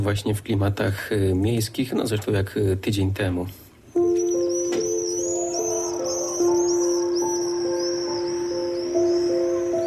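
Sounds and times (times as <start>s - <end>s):
speech: 0.0s - 3.6s
soft tonal music with sustained notes: 3.9s - 9.8s
common swifts screaming: 4.0s - 9.8s.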